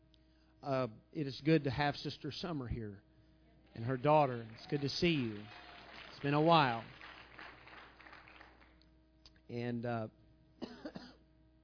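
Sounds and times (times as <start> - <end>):
speech: 0.6 - 3.1, 3.8 - 5.6, 6.2 - 7.0, 9.5 - 10.8
person coughing: 10.6 - 11.2.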